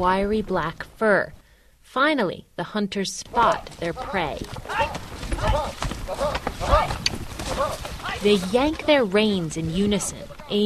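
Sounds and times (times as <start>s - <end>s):
speech: 0.0s - 6.9s, 7.6s - 10.6s
horses trotting over soft sandy ground and scrubby oak brush: 3.2s - 10.6s.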